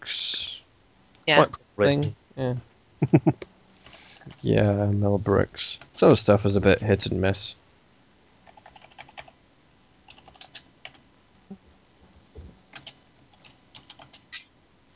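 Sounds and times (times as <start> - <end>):
speech: 1.3 - 3.5, 4.3 - 7.6
laughter: 3.0 - 3.4
typing on a computer keyboard writing a forum post: 8.4 - 9.4, 10.1 - 11.0, 12.7 - 14.3.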